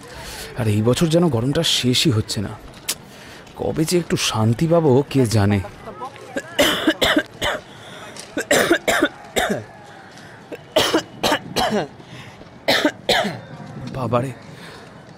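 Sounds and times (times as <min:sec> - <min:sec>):
speech: 0:00.6 - 0:02.7, 0:03.6 - 0:05.8, 0:11.7 - 0:12.0, 0:14.0 - 0:14.5
person coughing persistently with harsh throaty hacks: 0:06.5 - 0:07.6, 0:08.4 - 0:09.6, 0:10.8 - 0:11.9, 0:12.7 - 0:13.4.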